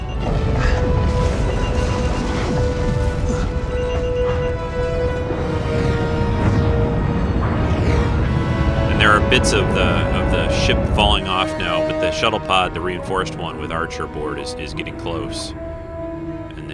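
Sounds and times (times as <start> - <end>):
loud sustained explosion with heavy low rumble: 0.0 - 12.8
steady humming drone: 0.0 - 16.7
speech: 9.3 - 15.7.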